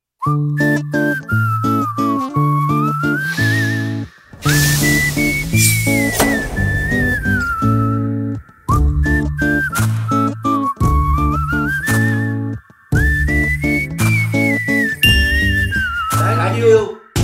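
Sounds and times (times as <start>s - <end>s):
whistle instrumental melody: 0.2s - 17.2s.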